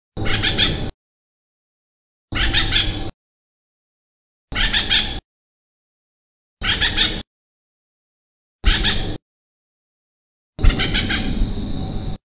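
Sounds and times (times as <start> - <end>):
acorn woodpecker calling: 0.2 - 0.9, 2.3 - 3.1, 4.5 - 5.2, 6.6 - 7.2, 8.7 - 9.2, 10.6 - 11.4.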